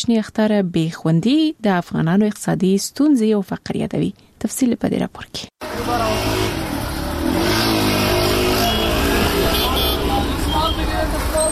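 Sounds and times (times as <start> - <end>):
speech: 0.0 - 6.3
car traffic in city streets in Afghanistan during Eid: 5.6 - 11.5.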